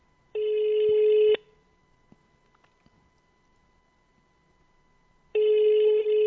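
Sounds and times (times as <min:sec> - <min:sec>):
telephone ringing on an outgoing call: 0:00.4 - 0:01.5, 0:05.4 - 0:06.2.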